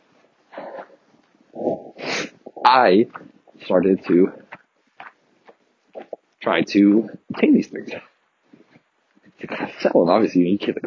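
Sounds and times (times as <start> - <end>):
person sniffing in freezing cold: 1.6 - 2.6
speech: 2.7 - 4.4, 6.4 - 8.1, 9.5 - 10.8.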